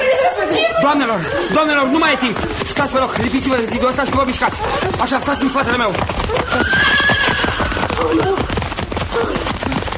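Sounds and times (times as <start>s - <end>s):
laughter: 0.0s - 6.9s
horse hooves galloping: 0.0s - 9.9s
speech: 0.9s - 7.0s, 8.0s - 8.5s
huge runaway horse neighing: 6.4s - 8.3s.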